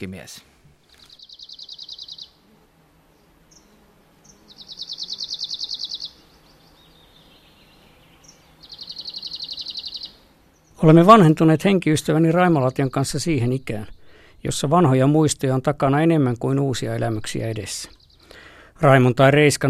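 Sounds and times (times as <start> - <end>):
speech: 0.0 - 0.5, 10.8 - 18.0, 18.8 - 19.6
Arctic warbler singing buzzing trills: 0.9 - 19.6.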